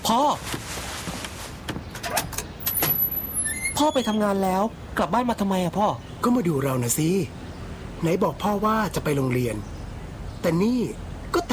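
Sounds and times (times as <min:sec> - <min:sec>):
speech: 0:00.1 - 0:00.9, 0:03.8 - 0:07.4, 0:08.0 - 0:09.7, 0:10.4 - 0:11.5
door scraping as it swings open: 0:02.0 - 0:04.2.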